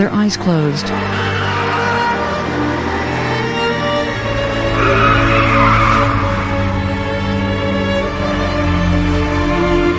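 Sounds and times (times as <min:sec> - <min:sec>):
speech: 0:00.0 - 0:01.5
car engine roaring: 0:00.0 - 0:09.9
car tires squealing and skidding while swerving: 0:00.6 - 0:08.2.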